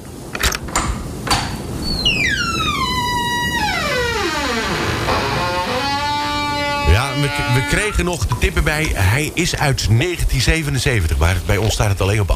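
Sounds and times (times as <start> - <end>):
metallic clicks of a door lock being turned: 0.3 - 1.6
door swinging open with a creaking squeal: 0.3 - 8.5
speech: 7.3 - 12.3.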